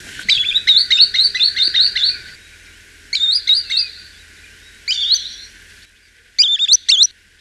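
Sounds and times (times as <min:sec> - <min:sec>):
green sandpiper Tringa ochropus high whistled calls: 0:00.2 - 0:02.4, 0:03.1 - 0:05.5, 0:06.4 - 0:07.1.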